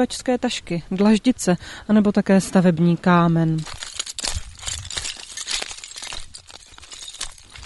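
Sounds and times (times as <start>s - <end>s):
speech: 0.0s - 3.8s
loose slate pieces clattering on a slate spoil heap: 3.6s - 7.6s.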